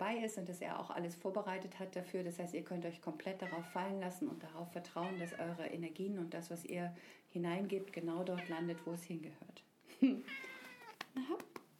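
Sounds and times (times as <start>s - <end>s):
speech: 0.1s - 10.6s, 11.2s - 11.5s
cat meowing: 3.4s - 4.0s, 5.0s - 5.7s, 8.4s - 9.0s, 10.3s - 11.0s.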